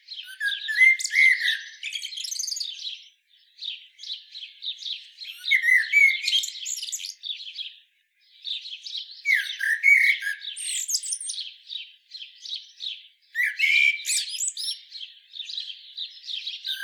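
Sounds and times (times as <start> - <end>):
common blackbird Turdus merula singing: 0.0 - 16.8.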